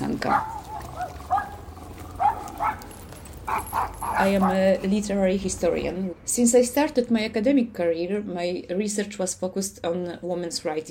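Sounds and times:
speech: 0.2s - 0.6s, 3.5s - 10.8s
dogs barking: 0.2s - 4.8s.

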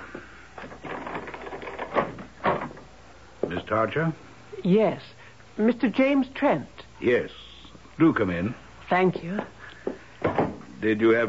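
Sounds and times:
door thumping as it swings free: 0.7s - 3.6s, 10.2s - 10.7s
speech: 3.7s - 7.4s, 8.0s - 9.6s, 10.8s - 11.2s.

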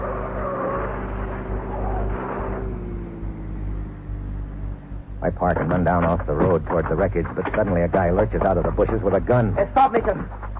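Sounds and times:
car engine revving during a car chase on wet roads: 0.0s - 9.6s
speech: 5.2s - 10.5s.

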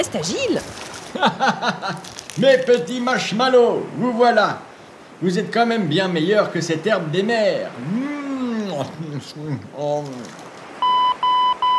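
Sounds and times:
speech: 0.0s - 8.2s, 8.8s - 10.4s
laughter: 1.1s - 2.1s
electronic beeps from an answering machine: 10.8s - 11.7s.

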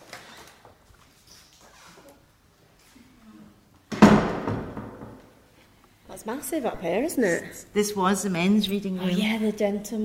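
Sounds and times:
pair of heavy wooden doors pushed open: 3.9s - 5.3s
speech: 6.2s - 10.0s.

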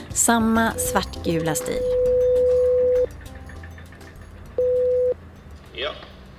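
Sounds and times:
speech: 0.2s - 2.0s
intercom buzzing at a building entrance: 0.6s - 3.0s.

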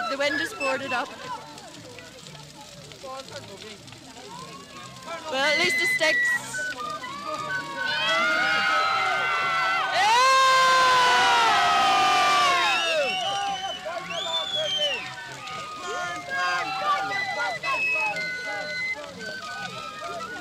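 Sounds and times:
large crowd at a bonfire cheering and shouting: 0.0s - 1.6s, 4.3s - 20.4s
speech: 0.2s - 1.5s, 3.0s - 4.0s, 5.0s - 6.4s, 7.3s - 8.7s.

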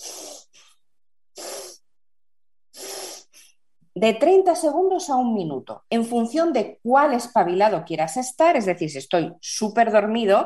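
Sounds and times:
forceful rapid breathing in and out through the nose: 0.0s - 0.8s, 1.4s - 1.8s, 2.7s - 3.6s
speech: 4.0s - 10.4s.

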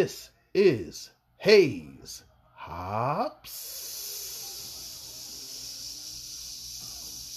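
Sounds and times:
speech: 0.0s - 4.1s
person making a breathy sizzling hiss with their mouth: 3.4s - 7.3s.

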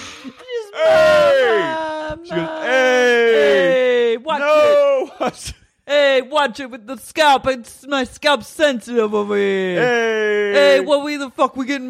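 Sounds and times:
gasping breaths: 0.0s - 0.5s
voice imitating a scream of agony: 0.1s - 5.2s
speech: 5.3s - 11.8s.

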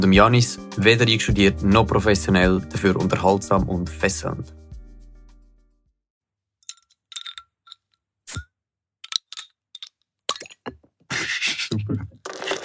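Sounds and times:
speech: 0.0s - 4.6s
beer bottle opening hiss: 8.3s - 8.5s.

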